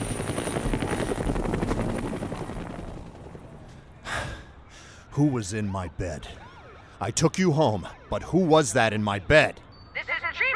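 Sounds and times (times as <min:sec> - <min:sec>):
helicopter rotor chopping: 0:00.0 - 0:04.0
short breathy gust: 0:04.0 - 0:05.1
speech: 0:05.2 - 0:06.4, 0:07.0 - 0:10.4.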